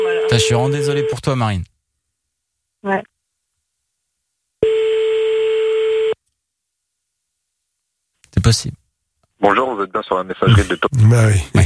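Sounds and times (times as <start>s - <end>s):
speech: 0.0s - 1.7s, 2.8s - 3.1s, 8.5s - 8.8s, 9.4s - 11.6s
telephone ringback tone while calling someone back: 4.6s - 6.2s.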